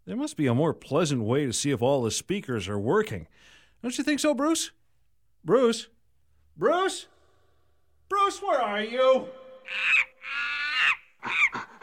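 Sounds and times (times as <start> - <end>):
speech: 0.1 - 4.8, 5.4 - 6.0, 6.6 - 7.1, 8.2 - 10.4
monkeys giving loud shrill screeching calls: 9.6 - 11.8.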